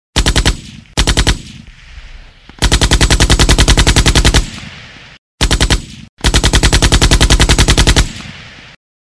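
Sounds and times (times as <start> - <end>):
machine gun firing: 0.2 - 1.7, 2.6 - 4.7, 5.4 - 8.8.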